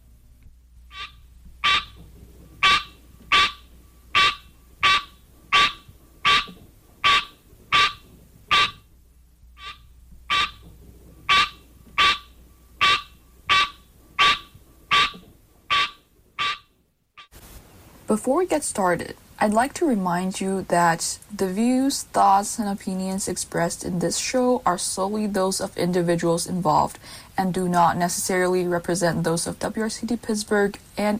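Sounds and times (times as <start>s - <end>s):
green tree frog calling: 0.9s - 2.0s, 2.6s - 8.9s, 9.6s - 17.4s
speech: 18.1s - 31.1s.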